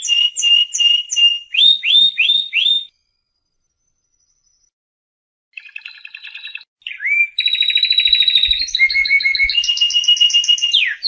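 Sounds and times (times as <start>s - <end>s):
canary singing: 0.0s - 2.9s, 5.6s - 11.0s.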